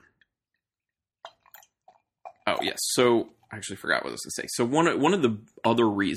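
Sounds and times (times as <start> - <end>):
vintage beer pouring into a glass: 1.3 - 3.4
speech: 2.6 - 6.1.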